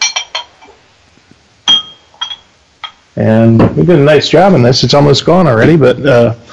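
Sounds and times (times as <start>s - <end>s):
glasses clinking: 0.0s - 0.8s, 1.6s - 3.1s
speech: 3.2s - 6.5s.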